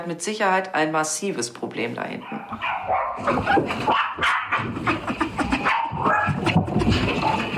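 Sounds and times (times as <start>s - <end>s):
speech: 0.0s - 5.3s
dog barking frantically and hysterically: 2.2s - 7.5s.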